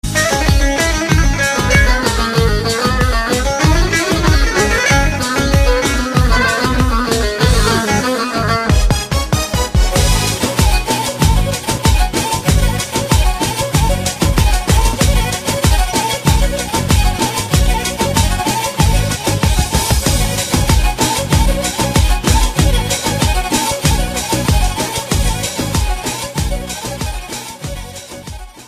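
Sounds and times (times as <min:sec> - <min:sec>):
Turkish music: 0:00.0 - 0:28.6.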